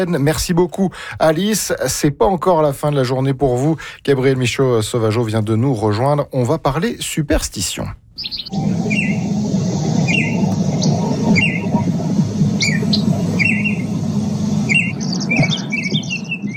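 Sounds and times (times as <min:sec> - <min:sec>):
speech: 0:00.0 - 0:09.4
calls of several Canadian bird species, chirps and short whistles: 0:08.2 - 0:11.9, 0:12.6 - 0:14.0, 0:14.6 - 0:16.5
steady low rumble: 0:08.5 - 0:16.5.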